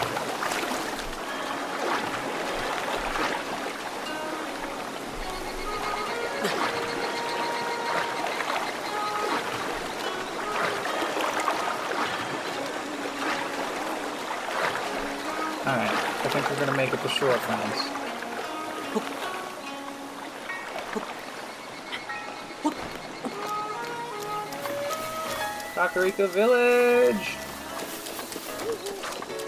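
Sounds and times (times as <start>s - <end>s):
rushing water from a waterfall: 0.0s - 29.4s
speech: 16.6s - 18.0s, 26.0s - 27.4s.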